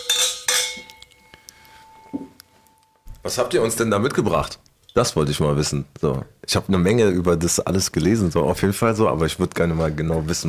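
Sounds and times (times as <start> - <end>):
glasses clinking together in a toast: 0.0 - 2.4
speech: 3.2 - 10.4.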